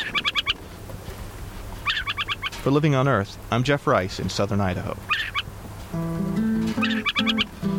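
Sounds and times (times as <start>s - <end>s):
adult owl calling from a fence post beside a den in southern Idaho: 0.0s - 0.6s, 1.8s - 2.6s, 5.0s - 5.6s, 6.5s - 7.6s
speech: 2.6s - 5.3s, 5.9s - 6.4s.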